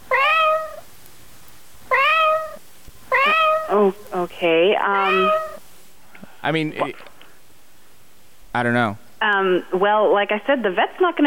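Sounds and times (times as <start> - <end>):
choking cat meowing: 0.0 - 0.9, 1.9 - 4.1, 4.9 - 5.6
speech: 3.7 - 5.4, 6.4 - 7.1, 8.5 - 11.2.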